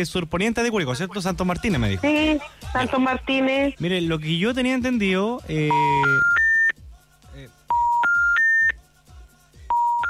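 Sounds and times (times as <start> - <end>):
speech: 0.0 - 6.4
dropped phone line emitting loud steady electronic beeps during power outage: 5.6 - 6.8, 7.7 - 8.8, 9.7 - 10.0.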